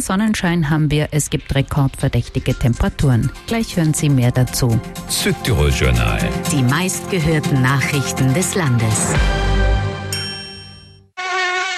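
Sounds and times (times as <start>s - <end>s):
speech: 0.0s - 9.6s
mosquito buzzing: 11.2s - 11.7s.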